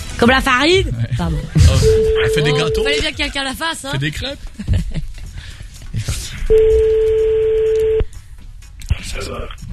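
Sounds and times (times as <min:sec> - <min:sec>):
speech: 0:00.2 - 0:04.5, 0:06.5 - 0:08.1, 0:09.1 - 0:09.6
telephone tone as a call is placed: 0:01.9 - 0:03.0, 0:06.5 - 0:08.1.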